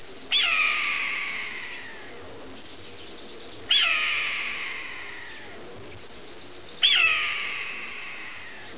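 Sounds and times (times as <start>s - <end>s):
desert ambience: 0.0s - 8.7s
red-tailed hawk calling in desert: 0.3s - 2.2s, 3.7s - 5.6s, 6.8s - 8.7s.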